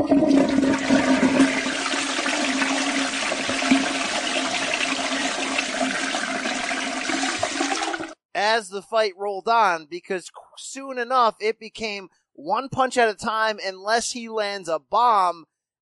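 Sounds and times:
toilet flushing: 0:00.0 - 0:08.2
speech: 0:08.6 - 0:15.5.

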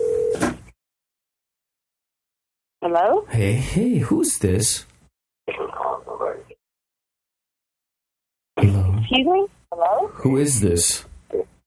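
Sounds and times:
steady electronic telephone call connecting tone: 0:00.0 - 0:00.4
speech: 0:02.8 - 0:04.9, 0:09.1 - 0:11.5.

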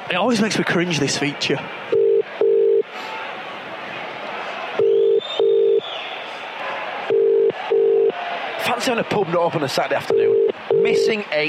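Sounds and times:
speech: 0:00.1 - 0:02.0, 0:08.8 - 0:11.4
telephone call double-burst ringback tone: 0:01.9 - 0:02.8, 0:04.8 - 0:05.8, 0:07.1 - 0:08.1, 0:10.1 - 0:11.1.

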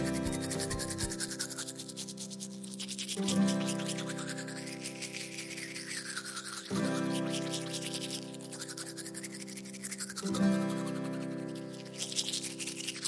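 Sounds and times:
toothbrush scrubbing teeth: 0:00.0 - 0:13.0.

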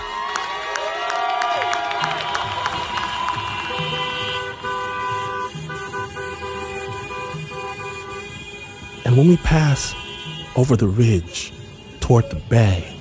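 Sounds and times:
crowd cheering: 0:00.0 - 0:04.5
car horns honking in a protest procession of cars: 0:02.0 - 0:12.9
speech: 0:09.1 - 0:10.0, 0:10.6 - 0:12.9.

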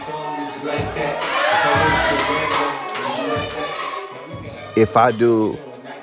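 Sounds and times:
crowd cheering and exclaiming: 0:00.0 - 0:06.0
people shouting: 0:00.0 - 0:06.0
speech: 0:00.6 - 0:02.6, 0:04.8 - 0:05.7
scattered clapping: 0:01.2 - 0:04.1.

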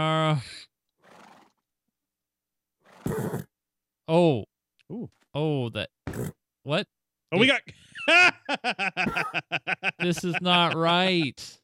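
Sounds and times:
speech: 0:00.0 - 0:00.7, 0:04.1 - 0:11.6
video game horse neighing and whinnying: 0:01.0 - 0:01.5, 0:02.8 - 0:03.5
video game horse snorting: 0:01.0 - 0:01.6, 0:02.8 - 0:03.5, 0:06.1 - 0:06.4
laughter: 0:07.4 - 0:11.4.

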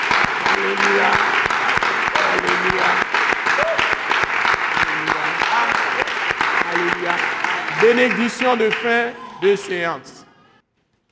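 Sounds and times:
crowd at a Christian worship service clapping and cheering: 0:00.0 - 0:09.8
people shouting and whooping: 0:01.0 - 0:02.9, 0:03.5 - 0:04.0
speech: 0:02.4 - 0:03.7, 0:06.8 - 0:10.1.

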